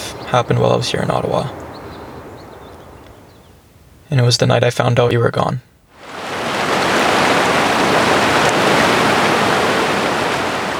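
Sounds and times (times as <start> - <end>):
speech: 0.3 - 1.6, 4.1 - 5.7
flowing river water rushing: 6.0 - 10.7.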